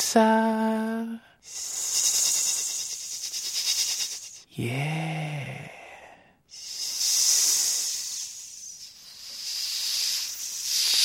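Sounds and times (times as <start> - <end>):
speech: 0.1 - 1.8, 4.6 - 5.4
snake hissing: 1.4 - 4.5, 6.5 - 11.0.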